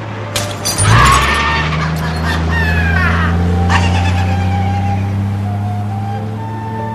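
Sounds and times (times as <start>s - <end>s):
car engine rumbling with a low droning hum: 0.0s - 6.9s
bottle thrown from a car crashing: 0.4s - 1.4s.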